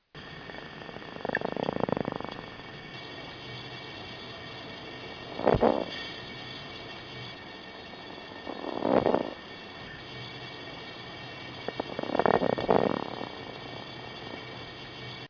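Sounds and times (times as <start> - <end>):
Trigloporus lastoviza growling: 0.3 - 2.7, 5.2 - 6.2, 8.2 - 9.6, 11.6 - 13.6.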